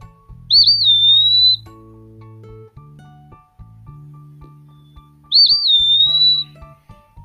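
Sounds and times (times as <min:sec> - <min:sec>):
low steady hum: 0:00.0 - 0:07.2
eastern wood pewee song: 0:00.5 - 0:01.7, 0:04.7 - 0:06.7.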